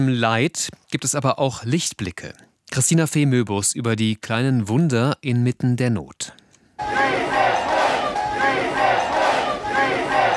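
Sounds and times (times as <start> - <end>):
speech: 0.0 - 7.2
crowd of rescue workers and relatives cheering and shouting: 6.8 - 10.3.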